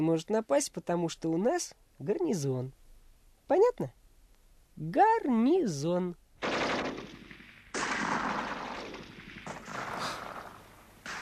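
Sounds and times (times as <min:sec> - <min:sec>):
speech: 0:00.0 - 0:02.8, 0:03.5 - 0:04.0, 0:04.8 - 0:06.2
gunfire crackling: 0:06.4 - 0:11.2.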